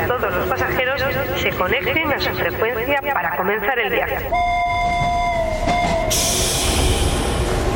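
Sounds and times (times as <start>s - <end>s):
tram rumbling rush of rolling noise: 0.0s - 7.7s
speech: 0.2s - 4.7s
tram wheels whining and squealing pulling away from a station: 4.3s - 7.7s.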